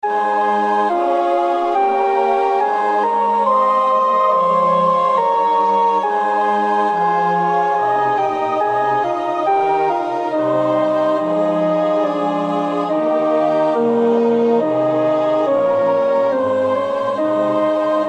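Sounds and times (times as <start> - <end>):
alto choir part singing a chorale: 0.0 - 18.0.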